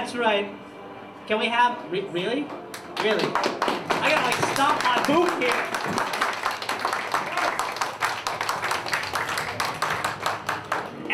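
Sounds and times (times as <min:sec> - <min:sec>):
speech: 0:00.1 - 0:00.7, 0:01.3 - 0:06.3
crowd applauding: 0:02.7 - 0:11.1.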